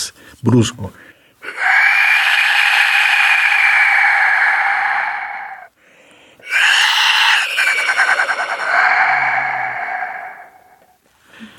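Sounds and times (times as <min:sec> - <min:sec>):
speech: 0:00.4 - 0:01.1
clay death whistle blown hard, screaming: 0:01.5 - 0:05.7, 0:06.4 - 0:10.8.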